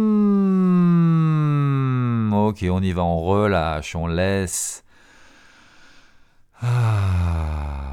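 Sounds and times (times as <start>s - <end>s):
person exhaling in a loud voiced sigh: 0.0s - 2.3s, 6.6s - 7.9s
speech: 2.4s - 4.8s, 6.6s - 7.4s.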